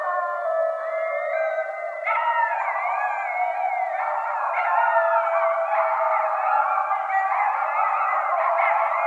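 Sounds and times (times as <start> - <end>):
several coyotes howling and yipping at night: 0.0 - 9.0.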